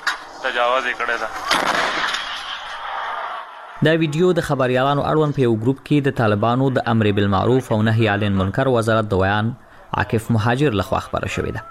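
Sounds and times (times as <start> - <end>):
speech: 0.4 - 2.2, 3.8 - 11.6
homemade artillery cannon firing from Kunar toward the Pakistani side: 1.0 - 3.8.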